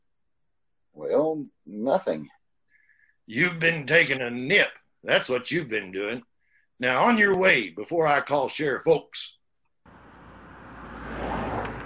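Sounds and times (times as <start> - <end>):
speech: 1.0 - 2.4, 3.3 - 10.0
car engine starting and rumbling: 9.9 - 11.8.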